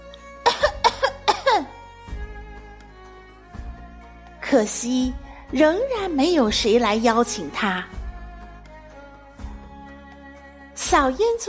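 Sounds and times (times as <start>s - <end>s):
person coughing deliberately: 0.4s - 1.7s
speech: 4.5s - 8.0s, 10.9s - 11.4s.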